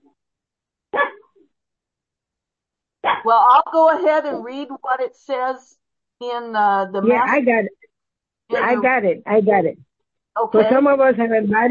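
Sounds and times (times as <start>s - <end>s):
pet dog barking: 1.0s - 1.3s, 3.0s - 3.3s
speech: 3.2s - 7.8s, 8.5s - 9.8s, 10.4s - 11.7s.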